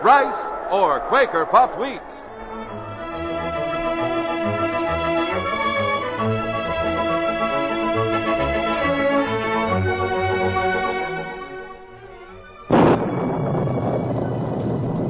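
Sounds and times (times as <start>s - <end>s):
speech: 0.0s - 2.2s
orchestral music: 1.5s - 15.0s
thunder crash echoing from the hills: 12.7s - 15.0s.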